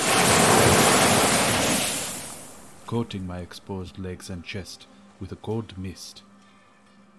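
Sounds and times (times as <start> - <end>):
sea wave crashing against a rock: 0.0 - 2.9
speech: 2.9 - 6.3.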